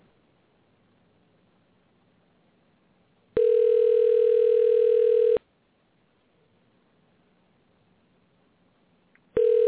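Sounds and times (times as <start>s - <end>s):
phone ringback tone as a call rings out after dialing: 3.4s - 5.4s, 9.4s - 9.6s.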